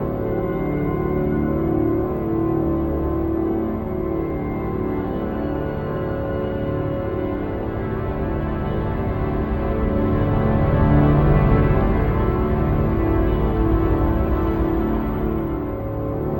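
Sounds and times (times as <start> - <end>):
big wind acoustic drone: 0.0 - 16.3.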